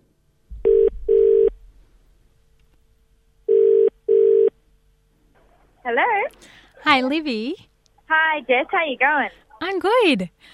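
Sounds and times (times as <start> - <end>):
telephone ringback tone as a call is placed: 0.7 - 1.5, 3.5 - 4.5
speech: 5.9 - 10.5.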